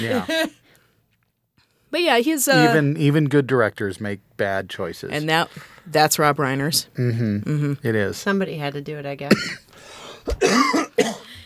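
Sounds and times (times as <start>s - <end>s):
speech: 0.0s - 0.6s, 1.9s - 9.6s, 10.3s - 11.2s
harsh rasping cough: 9.3s - 11.4s.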